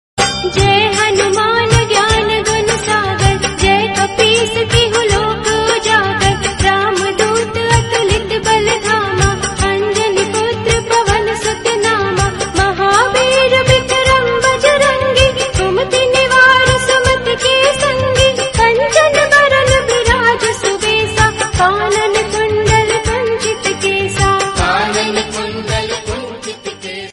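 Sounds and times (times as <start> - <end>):
woman singing a Hindu devotional hymn as a ringtone: 0.2 - 27.1.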